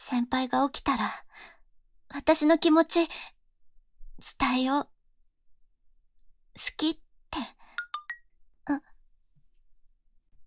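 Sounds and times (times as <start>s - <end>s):
speech: 0.1s - 1.5s, 2.1s - 3.4s, 4.2s - 4.9s, 6.6s - 7.6s, 8.7s - 8.9s
smartphone message notification tones: 7.8s - 8.2s.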